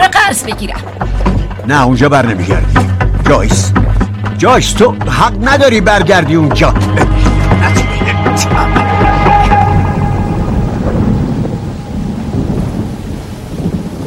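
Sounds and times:
loud deep thunder rumbling: 0:00.0 - 0:14.0
speech: 0:00.3 - 0:07.8
rain-like hiss: 0:07.0 - 0:14.0.

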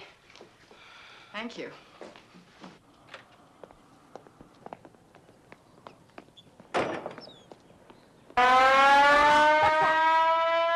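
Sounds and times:
speech: 0:01.4 - 0:02.2
town noon siren wailing: 0:08.4 - 0:10.7.

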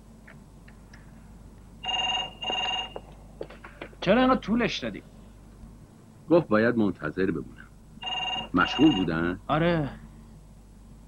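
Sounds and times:
low hiss: 0:00.0 - 0:11.0
telephone ringing with bright electronic trill: 0:01.8 - 0:03.0, 0:08.0 - 0:09.2
speech: 0:04.0 - 0:05.1, 0:06.3 - 0:07.6, 0:08.5 - 0:10.0.

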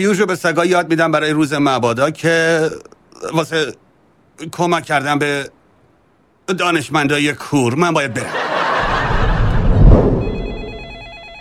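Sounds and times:
speech: 0:00.0 - 0:03.8, 0:04.4 - 0:05.6, 0:06.5 - 0:08.5
steady noisy background: 0:00.0 - 0:11.3
laughter: 0:08.1 - 0:09.8
telephone ringing with high electronic tones: 0:10.2 - 0:11.3.

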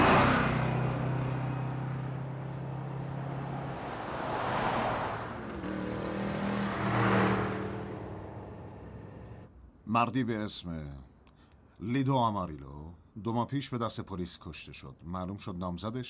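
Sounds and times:
car engine revving and driving off: 0:00.0 - 0:09.5
speech: 0:10.0 - 0:11.1, 0:11.8 - 0:16.0.

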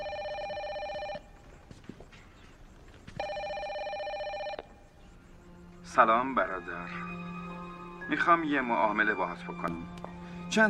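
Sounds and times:
old-style telephone bell ringing: 0:00.0 - 0:01.3, 0:03.2 - 0:04.7
faint shuffling: 0:00.8 - 0:03.8
speech: 0:06.0 - 0:07.2, 0:08.1 - 0:10.6.

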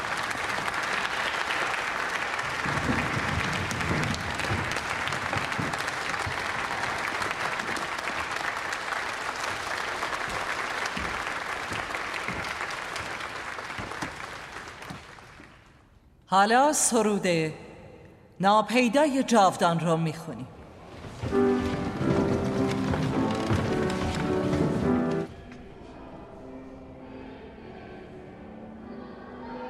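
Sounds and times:
audience applause: 0:00.0 - 0:15.9, 0:21.3 - 0:25.3
speech: 0:16.3 - 0:17.6, 0:18.4 - 0:20.6.

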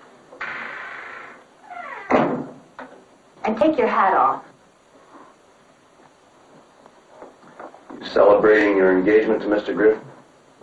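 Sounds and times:
door pushed closed with creak and thump: 0:01.7 - 0:02.6
speech: 0:03.4 - 0:04.4, 0:08.2 - 0:10.1.

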